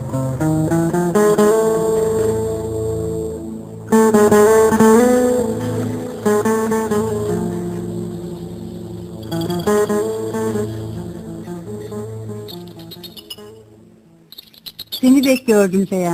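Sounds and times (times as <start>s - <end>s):
steady humming tonal background: 0.0s - 16.1s
speech: 0.1s - 0.5s, 15.5s - 16.1s
bird singing: 4.7s - 16.1s.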